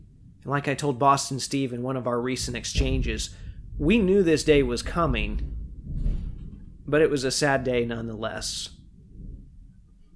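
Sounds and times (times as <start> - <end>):
speech: 0.4 - 5.5, 6.9 - 8.8
low thunder rumbling from a storm at a house: 2.3 - 9.9.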